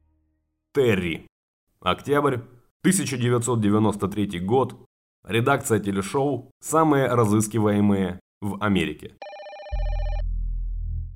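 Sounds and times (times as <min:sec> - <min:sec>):
speech: 0:00.8 - 0:09.4
telephone ringing with an electronic trilling tone: 0:09.2 - 0:10.2.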